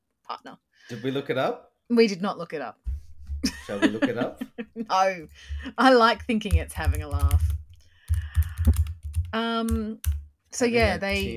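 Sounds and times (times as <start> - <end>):
speech: 0.3 - 2.9, 3.7 - 7.5, 8.7 - 11.3
laughter: 3.4 - 5.9
loud clacking of a mechanical keyboard: 5.3 - 11.3.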